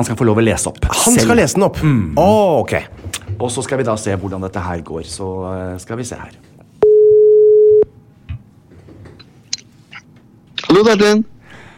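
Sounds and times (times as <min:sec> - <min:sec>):
speech: 0:00.0 - 0:06.5, 0:10.7 - 0:11.3
telephone call ring tone: 0:06.8 - 0:07.9.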